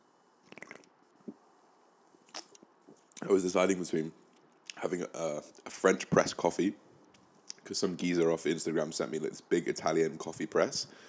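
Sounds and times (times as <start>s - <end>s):
small wet mouth clicks: 0.4s - 1.0s, 2.2s - 3.2s
person sipping an energy drink: 0.4s - 1.4s, 2.2s - 3.2s
slurping: 0.5s - 0.9s
soft gulp: 0.5s - 1.4s, 2.2s - 3.2s
speech: 3.2s - 4.2s, 4.8s - 6.8s, 7.7s - 11.0s.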